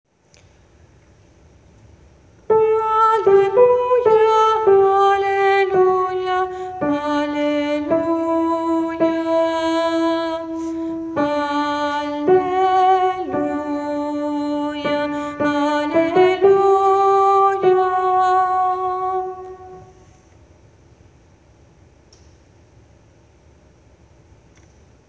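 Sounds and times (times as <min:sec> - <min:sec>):
tenor singing alleluia: 0:02.5 - 0:20.0.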